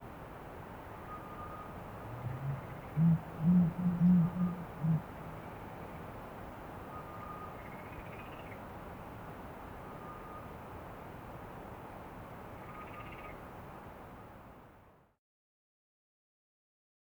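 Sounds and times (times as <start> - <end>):
male Turkish fish owl hooting slowly: 1.1 - 6.0.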